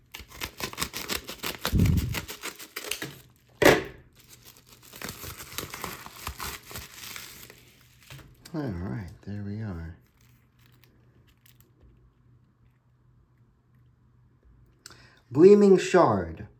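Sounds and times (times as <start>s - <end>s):
plastic packaging tearing: 0.0s - 8.4s, 10.0s - 11.8s
scissors snipping and crinkling plastic packaging: 0.0s - 8.4s
speech: 8.6s - 10.0s, 15.3s - 16.5s.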